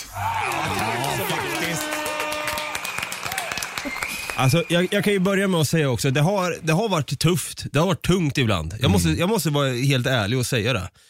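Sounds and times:
canned applause with crowd cheering and clapping: 0.0 - 6.4
speech: 4.4 - 11.0.

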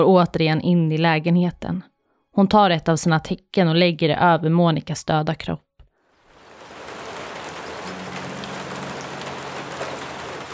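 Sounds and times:
speech: 0.0 - 5.7
rain falling: 6.0 - 10.5.

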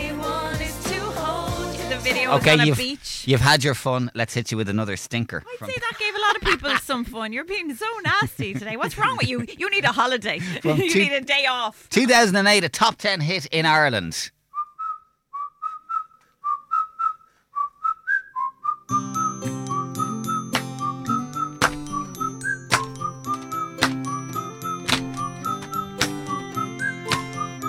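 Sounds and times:
full pop backing of drums, bass and chords: 0.0 - 2.9, 18.9 - 27.6
speech: 2.0 - 14.4
laughter: 5.6 - 7.0, 7.9 - 11.1
whistled melody in a pop song: 14.6 - 27.6
crisp percussive hits: 20.5 - 24.2, 24.8 - 27.4.

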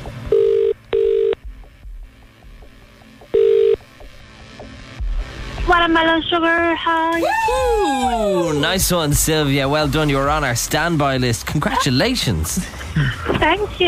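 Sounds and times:
outgoing phone call ringback tone: 0.3 - 1.4, 3.3 - 3.9
speech: 5.7 - 13.8.

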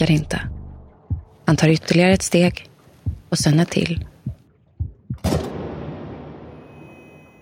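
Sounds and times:
speech: 0.0 - 0.5, 1.5 - 2.7, 3.3 - 4.1
dull low thumps: 0.0 - 5.8
rifle shot with rumbling echo: 5.2 - 6.6.

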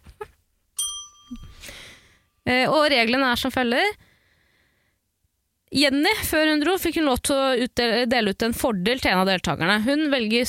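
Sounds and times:
hand bell ringing: 0.8 - 1.7
speech: 2.4 - 4.0, 5.7 - 10.4.

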